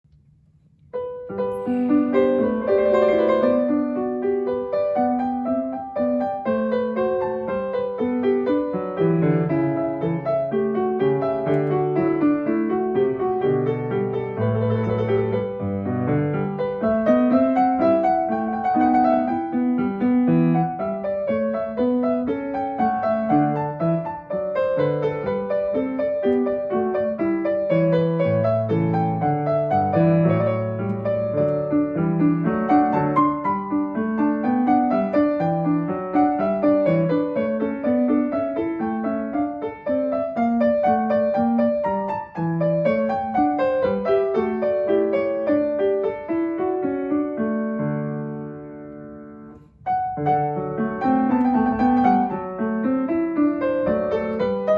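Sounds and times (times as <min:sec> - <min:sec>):
allemande with medium hall reverb: 0:00.3 - 0:54.7.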